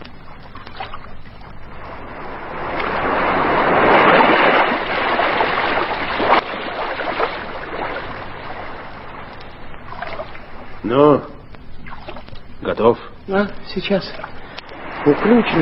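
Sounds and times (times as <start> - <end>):
calm sea water splashing against boat hulls at night: 0.0 - 10.8
speech: 12.8 - 14.3, 15.0 - 15.6.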